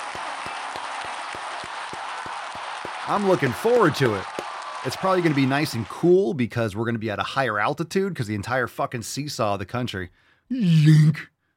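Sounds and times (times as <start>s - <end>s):
crowd applauding: 0.0s - 6.2s
speech: 3.1s - 11.3s.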